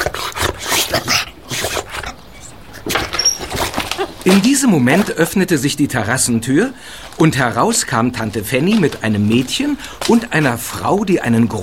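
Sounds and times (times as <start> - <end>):
dog making short breathy vocal bursts: 0.0 - 4.2
speech: 4.2 - 11.6.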